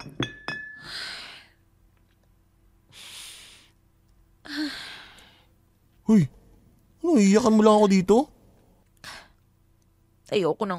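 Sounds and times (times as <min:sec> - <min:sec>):
glasses clinking: 0:00.0 - 0:00.9
speech: 0:06.1 - 0:06.4, 0:07.0 - 0:08.3, 0:10.3 - 0:10.7.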